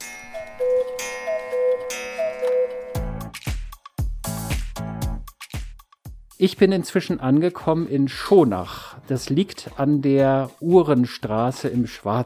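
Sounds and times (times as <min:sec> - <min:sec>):
Black Forest cuckoo clocks ticking at a cuckoo clock maker in Schonach, Germany: 0:00.0 - 0:03.2
speech: 0:06.4 - 0:12.2.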